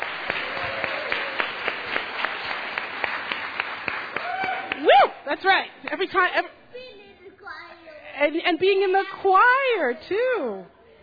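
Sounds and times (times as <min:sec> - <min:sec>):
crowd applauding: 0:00.0 - 0:05.0
speech: 0:05.3 - 0:06.9, 0:08.2 - 0:10.8.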